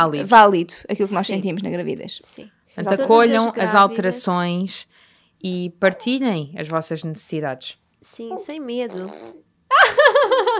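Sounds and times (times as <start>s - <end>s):
speech: 0.0s - 10.5s
raspberry-style fart noise made with the lips: 8.8s - 9.5s
laughter: 9.7s - 10.5s.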